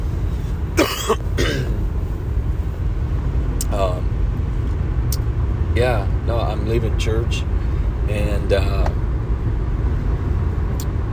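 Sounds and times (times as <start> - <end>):
van road rumble and engine drone: 0.0 - 11.1
person coughing inside a moving van: 0.8 - 1.8
speech: 6.7 - 9.0.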